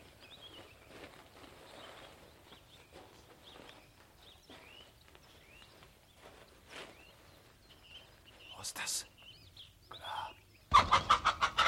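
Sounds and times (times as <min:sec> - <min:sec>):
hen clucking: 0:10.7 - 0:11.6.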